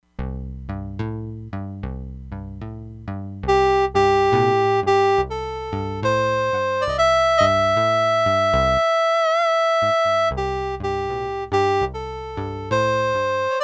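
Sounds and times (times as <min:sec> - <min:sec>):
synthesizer guitar and harmonica sounds: 0:03.5 - 0:13.6.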